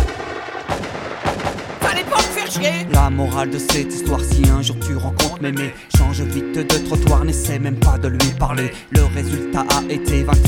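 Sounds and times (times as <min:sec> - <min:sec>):
gunshots: 0:00.0 - 0:03.0
steady tonal backing: 0:00.1 - 0:10.4
speech: 0:02.5 - 0:10.4.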